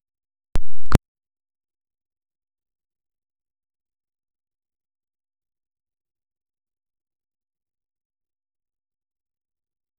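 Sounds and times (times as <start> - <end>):
phone system sound for enabling sound: 0.6 - 1.0.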